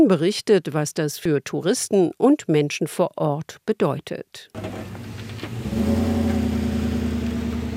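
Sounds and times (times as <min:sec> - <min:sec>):
speech: 0:00.0 - 0:05.0
car engine revving while turning around on road: 0:04.6 - 0:07.7.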